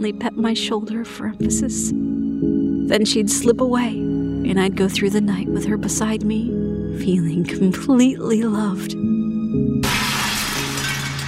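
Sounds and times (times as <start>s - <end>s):
speech: 0.0s - 9.7s
glass shattering: 9.8s - 11.2s.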